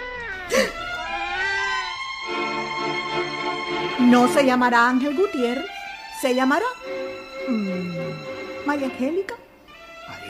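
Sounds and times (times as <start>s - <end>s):
newborn baby crying in a high-pitched wail: 0.0s - 2.7s
speech: 4.0s - 9.4s.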